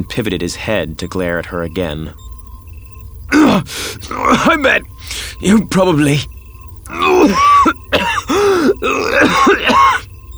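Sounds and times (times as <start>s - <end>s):
speech: 0.0s - 2.3s, 3.3s - 7.8s, 8.6s - 10.0s
person coughing: 3.3s - 6.2s, 6.9s - 10.0s.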